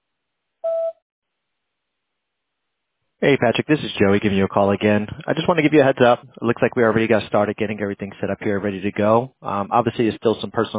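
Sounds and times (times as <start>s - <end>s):
voicemail beep: 0.6s - 1.0s
speech: 3.2s - 10.7s.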